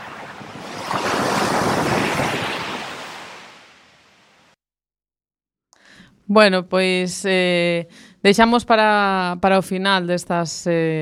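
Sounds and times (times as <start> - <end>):
sea waves surging: 0.0 - 4.6
speech: 6.3 - 11.0.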